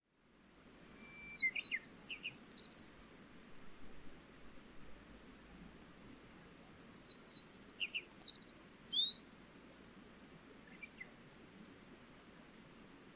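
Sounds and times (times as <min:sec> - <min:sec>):
soft hiss: 0:00.0 - 0:13.1
wild bird high thin whistles and slurred notes: 0:01.0 - 0:02.8.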